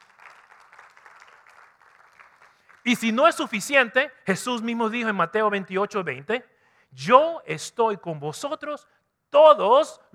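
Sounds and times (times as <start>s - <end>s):
audience applauding: 0.0s - 3.0s
speech: 2.8s - 10.1s.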